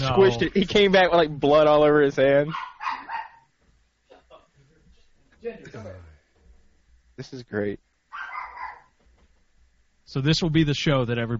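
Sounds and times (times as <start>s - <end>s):
speech: 0.1s - 2.7s, 5.4s - 6.1s, 7.2s - 7.9s, 10.1s - 11.3s
dog barking: 2.5s - 3.5s, 8.1s - 9.0s.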